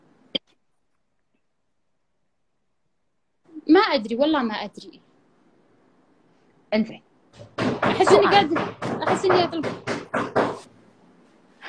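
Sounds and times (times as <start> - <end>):
speech: 3.7 - 5.1, 6.7 - 7.1, 8.0 - 10.4
knocking on a door: 7.4 - 10.7.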